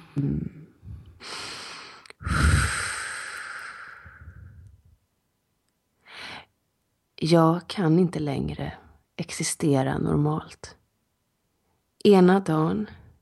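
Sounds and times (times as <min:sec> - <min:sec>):
speech: 0:00.2 - 0:00.6, 0:07.2 - 0:10.8, 0:12.0 - 0:13.0
deep breathing before singing: 0:00.8 - 0:04.9.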